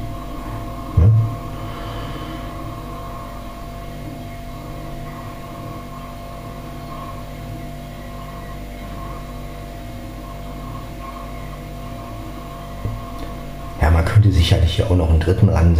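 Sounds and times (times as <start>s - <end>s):
refrigerator humming in kitchen: 0.0s - 15.7s
speech: 14.1s - 15.7s.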